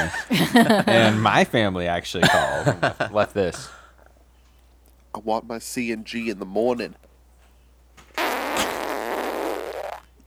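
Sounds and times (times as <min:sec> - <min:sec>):
speech: 0:00.0 - 0:03.8, 0:05.2 - 0:07.0
laughter: 0:00.0 - 0:03.9
long strained fart: 0:08.1 - 0:10.2.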